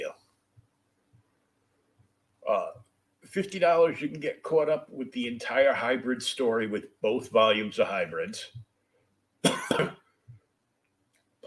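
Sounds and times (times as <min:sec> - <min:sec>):
speech: 0:03.3 - 0:08.7
loud cough: 0:09.4 - 0:10.1.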